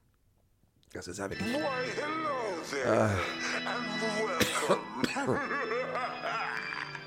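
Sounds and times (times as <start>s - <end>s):
speech: 0.9s - 6.8s
laughter: 3.5s - 7.0s
person in a harsh coughing fit: 4.3s - 5.6s.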